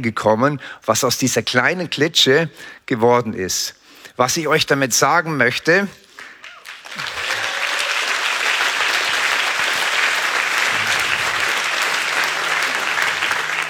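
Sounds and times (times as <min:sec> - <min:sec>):
speech: 0:00.0 - 0:06.0
audience applause: 0:06.4 - 0:13.6.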